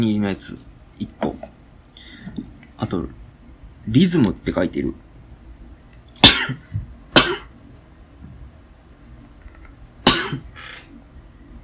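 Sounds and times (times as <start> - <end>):
speech: 0.0 - 1.6, 2.2 - 3.2, 3.9 - 5.0
sharp loud sneezes: 6.2 - 6.6, 7.2 - 7.5, 10.0 - 11.0.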